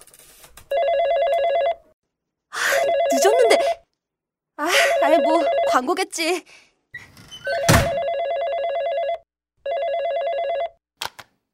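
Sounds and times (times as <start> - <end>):
telephone ringing: 0.7 - 1.8, 2.7 - 3.8, 4.8 - 5.8, 7.5 - 10.8
speech: 5.8 - 6.6.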